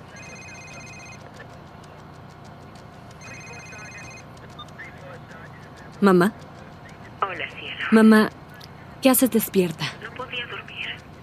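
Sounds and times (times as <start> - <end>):
police officer's phone ringing inside her parked car: 0.0 - 1.4, 3.2 - 4.8
steady low rumble: 0.3 - 11.2
speech: 6.0 - 6.4, 7.9 - 8.4, 9.0 - 9.9.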